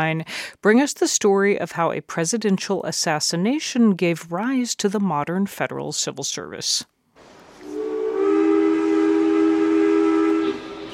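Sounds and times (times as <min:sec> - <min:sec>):
speech: 0:00.0 - 0:06.9
steam train whistle at a train station in Washington D.C. in 1881: 0:07.6 - 0:10.9.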